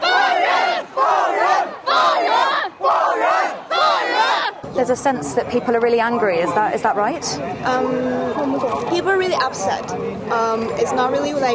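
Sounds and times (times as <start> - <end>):
large crowd chanting a slogan in unison: 0.0 - 4.7
speech: 4.9 - 11.5.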